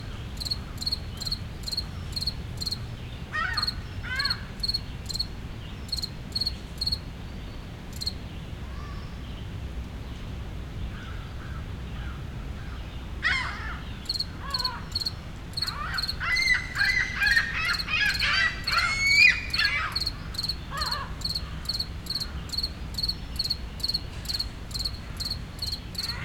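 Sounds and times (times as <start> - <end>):
low city rumble in Montreal, Canada: 0.0 - 26.2
cricket chirping in a park in Montreal, Canada: 0.4 - 2.8, 3.5 - 5.3, 5.9 - 7.0, 7.9 - 8.2, 14.0 - 26.2
gulls calling: 13.3 - 22.4.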